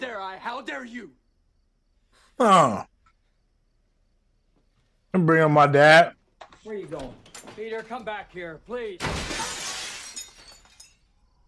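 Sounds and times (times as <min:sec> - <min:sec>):
speech: 0:00.0 - 0:01.2, 0:02.4 - 0:02.9, 0:05.2 - 0:09.7
glass pane of front door shattering: 0:09.0 - 0:11.2
glass shards tinkling as they fall: 0:09.5 - 0:11.2.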